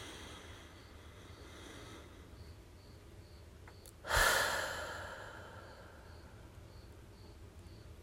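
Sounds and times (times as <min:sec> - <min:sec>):
deep breath: 0:00.0 - 0:02.4, 0:04.0 - 0:06.4.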